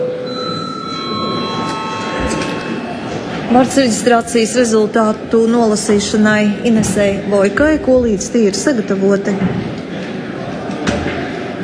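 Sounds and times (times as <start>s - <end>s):
electric bell ringing in a parliament chamber to call a break: 0.0s - 4.8s
speech: 3.5s - 9.7s.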